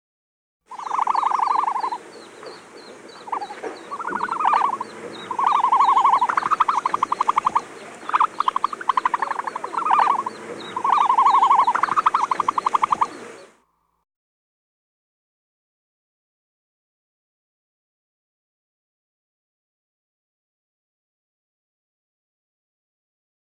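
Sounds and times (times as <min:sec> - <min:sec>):
ostrich calling: 0:00.7 - 0:13.6.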